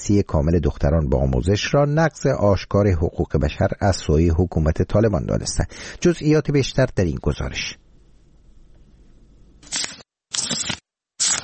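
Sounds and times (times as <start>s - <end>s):
speech: 0.0s - 7.8s
faint low hum: 0.0s - 9.6s
book pages turning: 9.6s - 11.4s.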